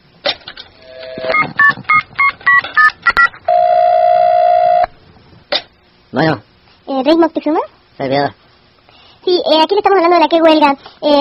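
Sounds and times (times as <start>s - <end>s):
touch-tone beeps of a telephone number being dialed: 1.2s - 4.9s
speech: 6.2s - 8.4s, 9.4s - 11.1s.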